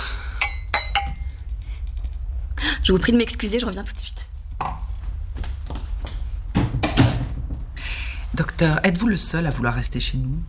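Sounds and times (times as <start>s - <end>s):
low hum: 0.0s - 10.4s
wine glasses clinking in a toast: 0.4s - 1.3s
speech: 2.9s - 4.2s, 8.6s - 10.4s.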